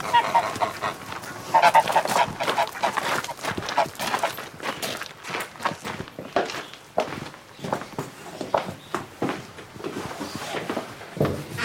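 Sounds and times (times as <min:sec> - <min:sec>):
geese honking in a farmyard: 0:00.0 - 0:04.4
hens clucking in a farmyard: 0:00.0 - 0:04.5
footsteps shuffling on the ground: 0:00.0 - 0:11.5.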